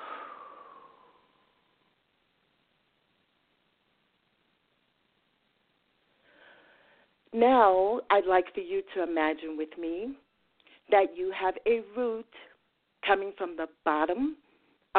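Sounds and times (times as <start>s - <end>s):
slow breathing during a guided relaxation exercise: 0.0s - 1.9s, 6.1s - 7.2s
speech: 7.3s - 10.2s, 10.9s - 14.9s.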